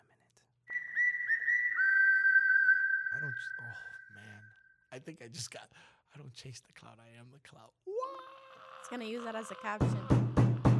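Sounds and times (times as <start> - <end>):
steady high whistle with rising chirps: 0.7 - 4.6
speech: 3.3 - 4.0, 4.9 - 10.3.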